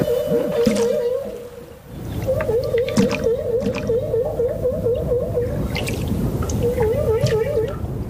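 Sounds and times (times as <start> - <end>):
humpback whale loud looping call underwater: 0.0 - 8.0
humpback whale blowing bubbles underwater: 2.1 - 7.8.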